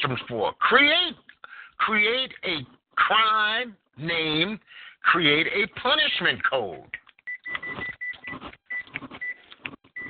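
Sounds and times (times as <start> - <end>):
speech: 0.0 - 7.0
microwave oven beeping in short high electronic tones: 7.3 - 9.4.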